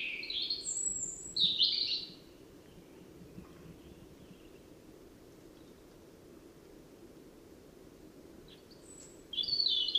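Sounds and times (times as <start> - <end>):
European robin Erithacus rubecula singing fluty twittering notes: 0.0 - 2.2, 8.5 - 9.9
background noise: 0.0 - 9.9.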